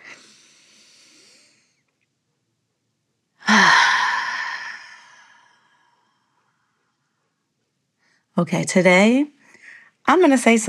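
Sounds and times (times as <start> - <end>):
deep breathing done together with a long sighing exhale: 0.0 - 1.8, 3.4 - 6.3
speech: 8.4 - 9.4, 10.1 - 10.6.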